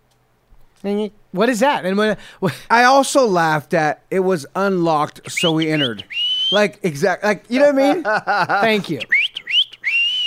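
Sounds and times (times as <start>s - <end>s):
speech: 0.8s - 9.2s
laughter: 5.4s - 6.0s, 7.5s - 9.2s
person whistling a gang-type signal whistle: 5.4s - 6.6s, 9.0s - 10.2s.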